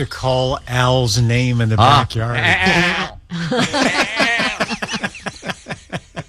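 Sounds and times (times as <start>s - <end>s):
speech: 0.0s - 4.8s
goat bleating loudly with a long wavering stuttering cry: 0.5s - 4.8s
laughter: 1.6s - 6.2s.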